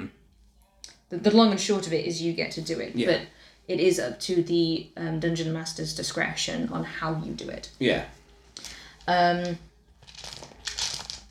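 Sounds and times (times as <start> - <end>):
speech: 1.1 - 9.7
dice rattling and clattering: 10.0 - 11.2.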